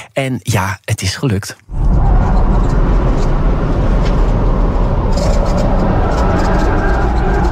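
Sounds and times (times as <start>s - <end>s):
speech: 0.2s - 2.4s
Tesla Model S Plaid electric sedan racing hard through corners: 1.7s - 7.4s.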